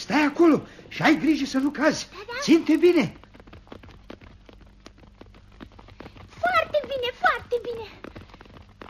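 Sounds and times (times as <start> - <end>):
horse hooves clip-clopping: 0.0 - 8.8
speech: 0.1 - 3.2.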